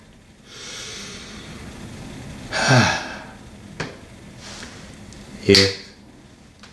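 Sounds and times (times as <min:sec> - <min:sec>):
deep breath: 0:00.4 - 0:01.7, 0:02.5 - 0:03.4
speech: 0:02.7 - 0:03.0, 0:05.5 - 0:05.8.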